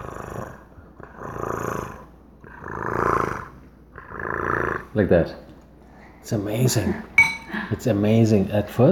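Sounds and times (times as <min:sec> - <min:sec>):
cat purring: 0:00.0 - 0:05.0
speech: 0:05.0 - 0:05.5, 0:06.2 - 0:08.9.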